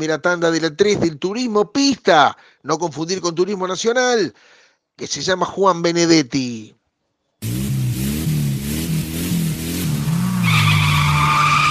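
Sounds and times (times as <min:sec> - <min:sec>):
speech: 0:00.0 - 0:06.8, 0:07.4 - 0:07.6
race car engine high whine: 0:07.4 - 0:11.6
race car tyres skidding: 0:09.0 - 0:11.6.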